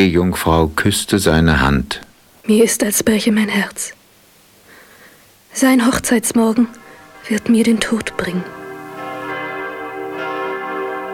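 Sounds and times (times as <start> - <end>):
speech: 0.0 - 4.0, 5.6 - 8.6
church bells ringing: 6.2 - 11.1.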